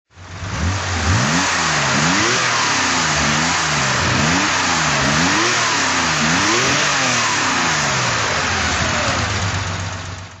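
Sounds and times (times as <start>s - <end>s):
Porsche 911 2.2 T engine throttle: 0.2s - 10.3s.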